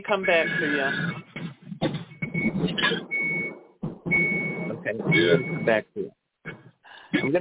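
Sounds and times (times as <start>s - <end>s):
speech: 0.0s - 1.3s, 4.9s - 6.1s, 7.2s - 7.3s
high-pitched beeping in the caller's background: 0.0s - 1.4s, 2.0s - 5.8s, 7.1s - 7.3s
phone-quality talking: 0.0s - 3.2s, 4.7s - 6.1s, 7.0s - 7.3s.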